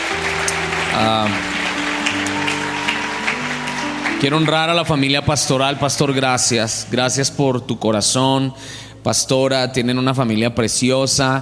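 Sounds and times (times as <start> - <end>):
crowd applauding: 0.0 - 7.3
sustained keyboard chords: 0.0 - 8.2
speech: 1.0 - 1.5, 4.2 - 11.4.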